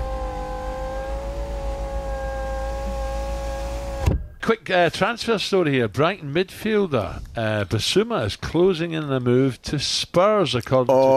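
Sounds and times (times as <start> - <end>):
car engine revving: 0.0 - 4.1
speech: 4.5 - 11.1.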